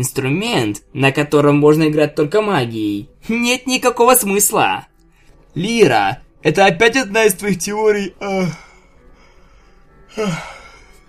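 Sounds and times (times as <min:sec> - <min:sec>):
speech: 0:00.0 - 0:04.9, 0:05.5 - 0:08.7, 0:10.1 - 0:10.6
breathy drawn-out yawns with falling pitch: 0:10.1 - 0:10.7.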